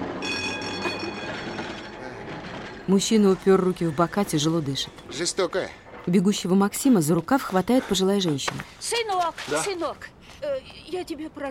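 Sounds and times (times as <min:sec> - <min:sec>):
tram rumbling in motion: 0:00.0 - 0:08.8
speech: 0:02.9 - 0:11.4.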